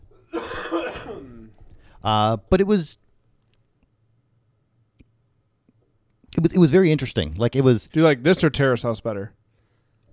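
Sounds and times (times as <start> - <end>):
harsh coughing trailing into a throaty rasp: 0.2 - 1.6
speech: 0.2 - 3.0, 6.3 - 9.4
quiet breathing: 1.4 - 2.1, 9.4 - 10.1.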